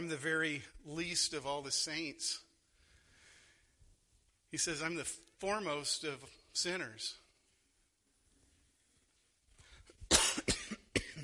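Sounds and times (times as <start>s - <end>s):
speech: 0.0s - 2.5s, 4.5s - 7.2s
person coughing loudly: 10.1s - 11.2s
throat clearing: 10.1s - 11.2s.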